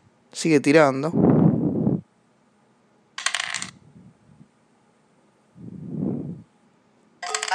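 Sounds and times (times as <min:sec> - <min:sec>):
speech: 0:00.4 - 0:01.3
dice tumbling and settling in a dice game: 0:03.2 - 0:03.7, 0:07.2 - 0:07.5.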